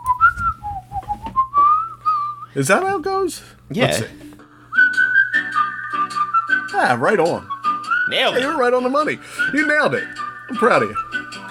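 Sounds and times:
person whistling a short melody with sliding, wavering notes: 0.0 - 2.6, 4.7 - 8.6, 9.2 - 11.4
speech: 2.6 - 4.3, 6.8 - 7.5, 8.1 - 11.0.

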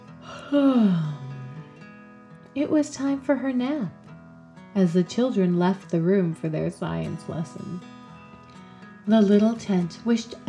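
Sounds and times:
narrator giving a performed yawn: 0.2 - 1.6
speech: 0.5 - 1.1, 2.6 - 4.0, 4.8 - 8.0, 9.0 - 10.4.

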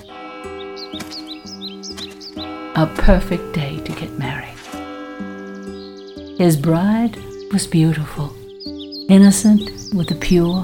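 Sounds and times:
sustained musical drone with soft rhythmic pulses: 0.0 - 8.0
birds chirping and twittering: 0.0 - 10.6
speech: 2.8 - 4.3, 6.4 - 8.4, 9.1 - 10.6.

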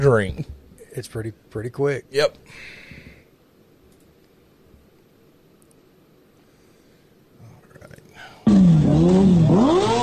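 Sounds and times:
speech: 0.0 - 2.9, 9.0 - 10.0
motorcycle engine revving: 8.5 - 10.0.

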